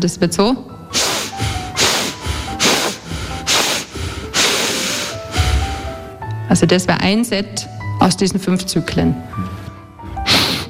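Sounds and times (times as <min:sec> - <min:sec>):
speech: 0:00.0 - 0:01.0, 0:06.5 - 0:09.6
rhythmic breathing through the nose with short sniffs and long inhale: 0:00.9 - 0:06.2.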